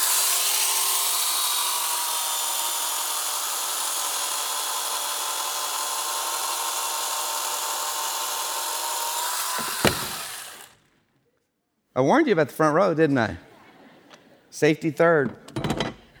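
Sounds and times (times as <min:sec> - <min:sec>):
chainsaw cutting through a block of ice: 0:00.0 - 0:10.8
speech: 0:12.0 - 0:13.5, 0:14.6 - 0:15.4.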